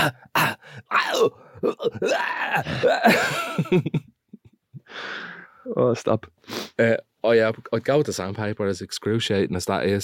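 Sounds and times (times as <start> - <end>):
person imitating gagging and dry heaving: 0.0 - 3.3
speech: 0.0 - 4.1, 5.0 - 10.0.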